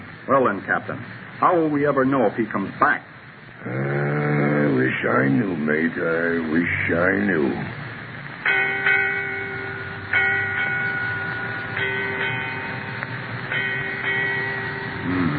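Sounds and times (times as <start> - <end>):
speech: 0.3 - 4.0, 4.9 - 7.8
ship's bell striking eight bells: 8.4 - 15.3.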